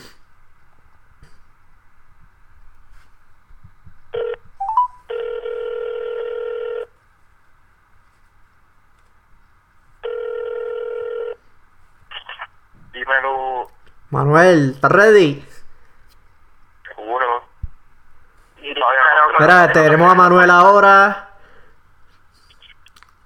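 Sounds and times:
faint steady tone: 0.2 - 23.2
telephone dialing tones: 4.2 - 6.9, 10.0 - 11.4
speech: 14.1 - 15.5, 19.6 - 21.2.

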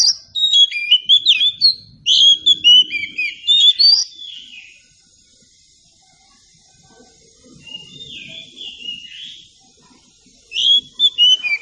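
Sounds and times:
Oriental magpie-robin whistled song: 0.0 - 4.8, 7.6 - 9.6, 10.5 - 11.6.

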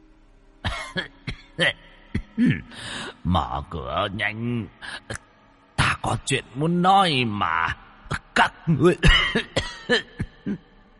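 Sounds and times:
old exhausted man coughing harshly: 0.6 - 2.7, 8.9 - 10.7
speech: 1.0 - 1.8, 2.4 - 5.1, 6.0 - 7.8, 8.4 - 10.6.

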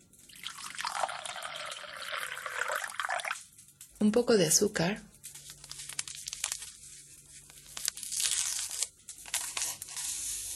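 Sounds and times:
water dripping: 0.1 - 4.1
water pouring for coffee: 0.2 - 3.5
speech: 4.0 - 5.1.

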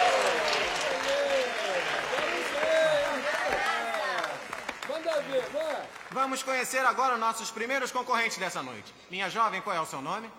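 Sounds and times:
audience applause for dance contest contestants: 0.0 - 7.0
speech: 6.2 - 10.3.

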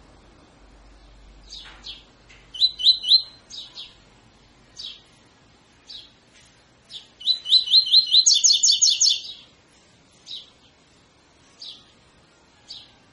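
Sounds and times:
double-collared seedeater singing tui tui fibra song type: 0.9 - 4.1, 4.7 - 5.2, 5.8 - 6.2, 6.8 - 9.6, 10.2 - 13.0.

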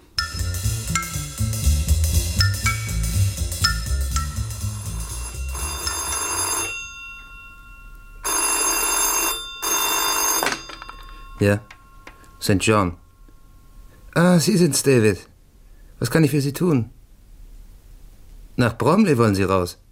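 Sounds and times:
music: 0.0 - 5.9
telephone bell ringing with an incoming call in a bachelor flat: 3.7 - 13.9
speech: 11.4 - 11.7, 12.4 - 13.0, 14.2 - 15.3, 16.0 - 17.0, 18.6 - 19.8.

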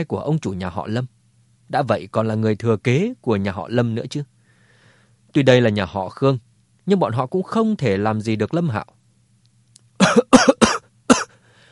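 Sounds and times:
speech: 0.0 - 4.4, 5.3 - 9.0
violent fit of harsh dry coughing: 10.0 - 11.4.

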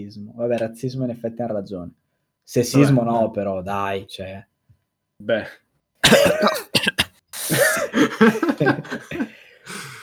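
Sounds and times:
speech: 0.0 - 4.5, 5.2 - 9.8
person coughing with strained breaths: 6.0 - 8.3
laughter: 7.8 - 9.4.

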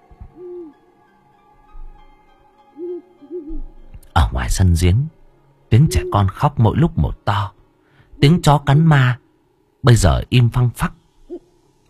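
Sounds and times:
scops owl hooting at night: 0.4 - 0.8, 2.7 - 3.6, 5.7 - 6.3, 11.2 - 11.8
speech: 4.2 - 7.6, 8.2 - 9.2, 9.8 - 11.0.

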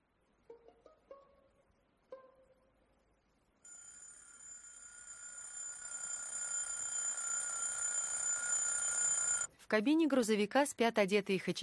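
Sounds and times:
alarm clock ringing inside the cab of a big orange truck: 3.7 - 9.5
speech: 9.7 - 11.6.

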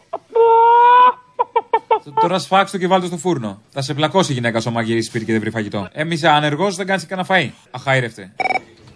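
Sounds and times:
person imitating a chicken squawking and clucking: 0.3 - 1.2
speech: 2.1 - 8.4.

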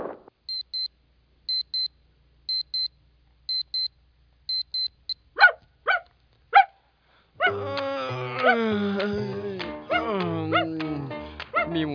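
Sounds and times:
quick electronic beeps: 0.5 - 0.9, 1.5 - 1.9, 4.5 - 5.2
dog yipping: 5.4 - 6.8
person speaking in a high cooing voice: 7.5 - 11.9.

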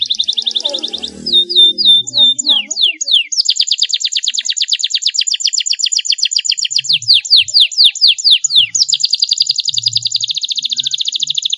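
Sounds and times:
Belgian canary singing: 0.0 - 11.5.

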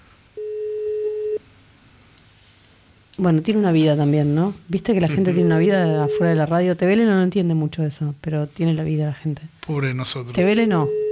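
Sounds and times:
telephone busy tone on an unanswered call: 0.4 - 1.4, 5.2 - 6.4, 10.8 - 11.0
speech: 3.2 - 11.0.

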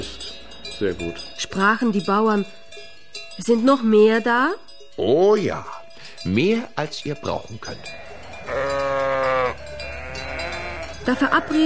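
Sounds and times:
speech: 0.8 - 2.6, 3.4 - 8.6, 11.1 - 11.6
sheep from a farmers' flock bleating: 7.8 - 11.6.

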